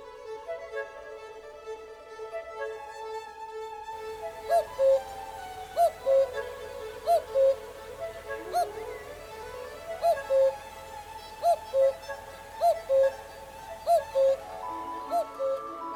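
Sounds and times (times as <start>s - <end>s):
soft sustained orchestral chords: 0.0s - 15.9s
orchestra instruments playing a two-note cuckoo bird call: 4.1s - 15.9s.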